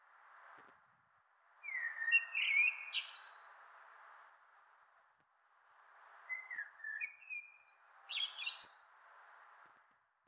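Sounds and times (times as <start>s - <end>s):
common blackbird Turdus merula whistled song and squeaky twitter: 1.6s - 3.6s, 6.3s - 8.8s.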